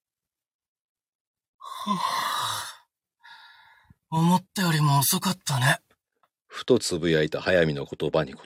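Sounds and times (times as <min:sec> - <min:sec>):
bored yawn: 0:01.6 - 0:02.9
breathy sound: 0:01.6 - 0:04.0
speech: 0:01.8 - 0:02.3, 0:04.1 - 0:05.8, 0:06.5 - 0:08.4.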